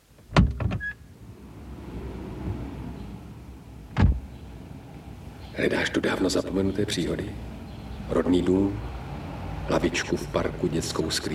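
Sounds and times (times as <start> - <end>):
car door thuds and clicks as someone gets out and locks it: 0.2 - 0.9, 3.9 - 4.3
solid thump: 4.0 - 4.2
speech: 5.6 - 7.5, 8.1 - 8.9, 9.7 - 11.3.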